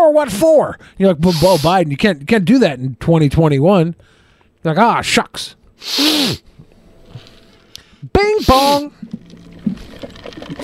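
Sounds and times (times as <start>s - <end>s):
speech: 0.1s - 6.5s, 8.0s - 10.6s
stifled sneeze: 1.3s - 1.7s, 5.8s - 6.5s, 8.4s - 8.9s.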